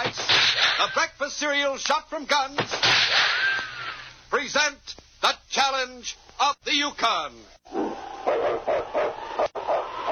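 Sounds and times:
speech: 1.0 - 3.3, 4.3 - 8.4
sled team lead dog barking in the snow: 7.8 - 10.1.

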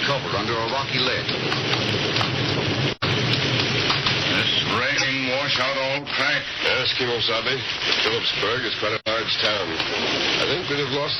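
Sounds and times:
heavy torrential wind-driven rain pouring down: 0.0 - 11.1
speech: 0.1 - 3.0, 5.4 - 11.1
low rumbling thunder: 1.1 - 5.5.

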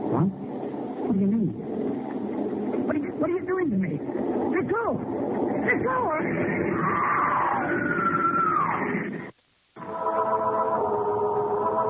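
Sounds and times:
heavy rumbling noise: 0.0 - 11.8
speech: 1.1 - 1.8
steady droning screeching din: 5.5 - 11.8
woman screaming: 6.8 - 8.8.

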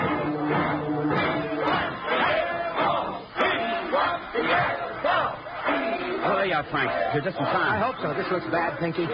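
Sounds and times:
angry crowd of college rooters shouting in front of a dressing room: 1.1 - 8.3
speech: 6.6 - 9.1.

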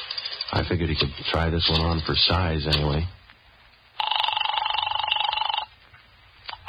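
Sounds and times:
speech: 0.5 - 3.2
telephone ringing through a handset earpiece on a call to police headquarters: 4.0 - 5.8.

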